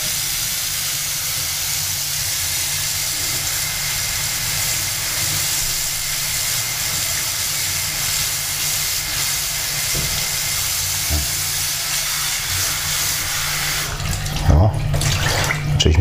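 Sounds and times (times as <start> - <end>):
tap water running into a bowl: 0.0 - 15.9.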